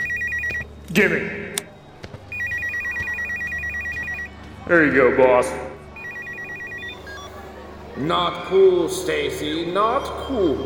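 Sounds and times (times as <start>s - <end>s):
cell phone ringing with a warbling electronic trill: 0.0s - 0.7s, 2.3s - 4.3s, 6.0s - 7.4s
speech: 1.0s - 1.4s, 4.7s - 5.7s, 8.0s - 10.6s.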